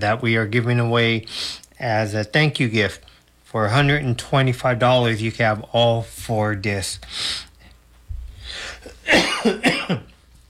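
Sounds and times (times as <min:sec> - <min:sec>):
speech: 0:00.0 - 0:07.5, 0:08.5 - 0:10.0
breathy intake of breath: 0:08.4 - 0:09.0
person coughing: 0:08.5 - 0:10.1.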